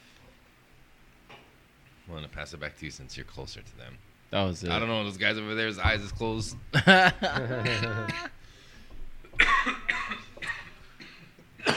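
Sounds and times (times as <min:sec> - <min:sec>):
speech: 0:02.1 - 0:08.4
laughter: 0:06.7 - 0:08.3
voiced vocal bursts: 0:07.4 - 0:08.4
rough breathy coughs: 0:07.6 - 0:08.4, 0:09.4 - 0:11.7
throat clearing: 0:09.4 - 0:11.7.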